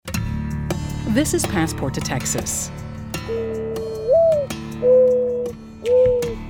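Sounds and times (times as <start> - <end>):
speech: 1.2 - 3.5
mourning dove cooing: 3.3 - 6.4.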